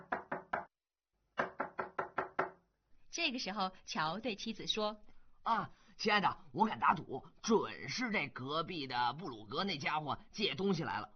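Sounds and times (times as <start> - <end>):
knocking on a door: 0.0 - 0.7, 1.4 - 2.6
speech: 3.2 - 11.1.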